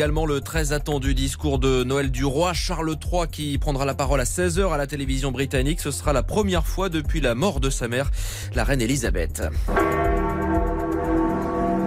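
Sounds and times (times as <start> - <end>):
speech: 0.0 - 10.1
church bells at the Vatican pealing on Christmas Day: 9.7 - 11.8.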